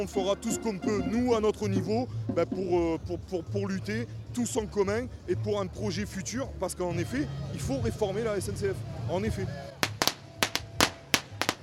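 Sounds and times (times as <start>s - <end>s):
speech: 0.0s - 9.7s
small firecrackers exploding at a protest: 9.8s - 11.6s.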